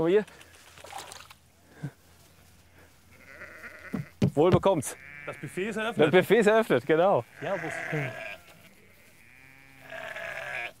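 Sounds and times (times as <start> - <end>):
speech: 0.0 - 0.5, 4.4 - 8.2
low steady noise: 0.0 - 10.7
flock of ewes bleating while being fed on a farm: 3.1 - 4.1, 4.8 - 10.7.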